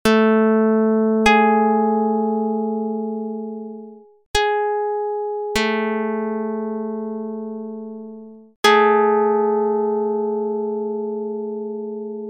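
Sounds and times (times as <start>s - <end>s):
DR220 pluck: 0.0s - 12.2s.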